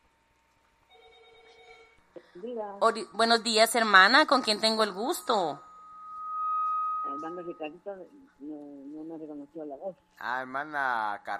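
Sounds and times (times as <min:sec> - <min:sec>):
telephone ringing with an incoming call: 0:00.9 - 0:02.0
speech: 0:02.4 - 0:05.7, 0:07.2 - 0:11.3.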